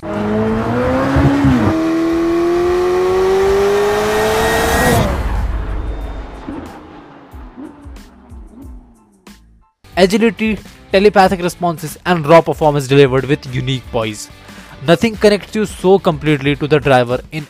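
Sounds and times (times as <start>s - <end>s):
McLaren Elva sports car engine revving: 0.0s - 9.4s
speech: 10.0s - 17.4s.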